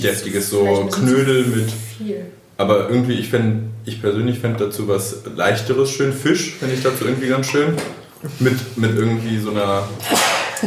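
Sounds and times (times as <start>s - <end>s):
speech: 0.0s - 10.6s
person sneezing: 10.0s - 10.6s.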